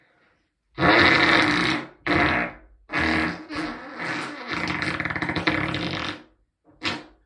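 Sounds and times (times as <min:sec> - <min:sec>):
muddy fart: 0:00.8 - 0:07.2.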